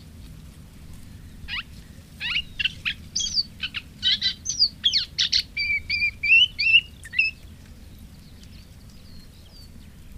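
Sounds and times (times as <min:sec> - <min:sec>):
moustached warbler song: 0:00.0 - 0:10.1.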